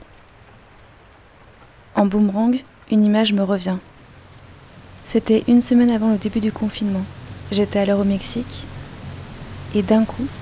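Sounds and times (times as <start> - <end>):
steady rain falling on a city street: 0.0 - 10.3
speech: 2.0 - 3.9, 5.1 - 8.7, 9.7 - 10.3.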